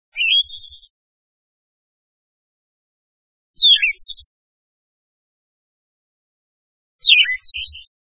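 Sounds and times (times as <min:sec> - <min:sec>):
Siberian thrush singing in mountain forest: 0:00.1 - 0:00.9, 0:03.6 - 0:04.3, 0:07.0 - 0:07.9.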